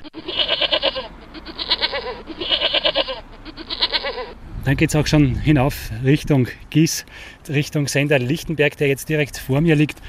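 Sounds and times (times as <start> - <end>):
goats bleating at an inn near the top of the Gis: 0.0 - 4.4
speech: 4.7 - 10.0.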